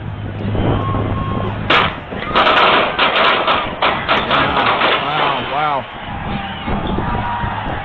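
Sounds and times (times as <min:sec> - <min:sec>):
dense outdoor crowd roaring at a celebration: 0:00.4 - 0:07.8
people shouting and screaming: 0:00.6 - 0:03.2, 0:03.9 - 0:07.8
gunshot pops at a crowded outdoor celebration: 0:01.7 - 0:05.8.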